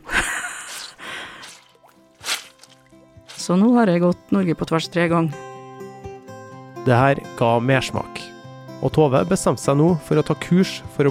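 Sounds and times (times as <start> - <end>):
soggy shoes squelching while hiking: 0.5 - 3.5
speech: 3.5 - 5.4, 6.8 - 8.2, 8.8 - 11.0.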